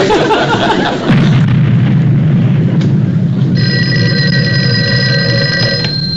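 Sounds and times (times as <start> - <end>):
laughter: 0.0 - 1.2
construction blasting explosion with deep rumble: 0.9 - 4.7
telephone bell ringing: 3.6 - 6.1.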